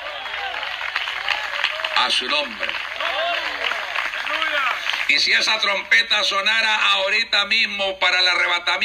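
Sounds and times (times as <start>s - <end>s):
congregation applauding loudly: 0.0s - 5.8s
speech: 2.0s - 3.6s, 5.1s - 8.8s.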